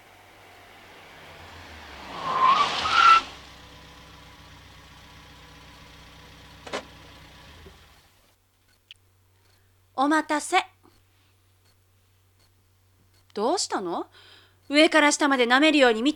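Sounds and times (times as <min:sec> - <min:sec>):
small car tires screeching: 0:00.0 - 0:05.8
small car engine idling: 0:00.0 - 0:08.3
car door thunk: 0:06.6 - 0:07.0
speech: 0:10.0 - 0:10.7, 0:13.4 - 0:16.1.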